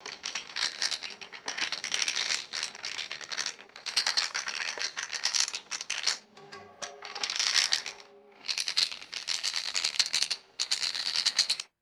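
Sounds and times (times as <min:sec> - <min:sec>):
mahjong tiles shuffling on a wooden table: 0:00.0 - 0:06.2, 0:07.1 - 0:11.7.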